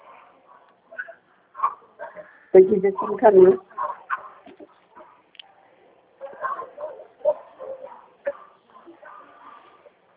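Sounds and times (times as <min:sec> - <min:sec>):
murmur: 0:00.0 - 0:10.1
dog barking: 0:00.9 - 0:02.2, 0:03.8 - 0:04.4, 0:06.2 - 0:09.8
speech: 0:02.5 - 0:03.7.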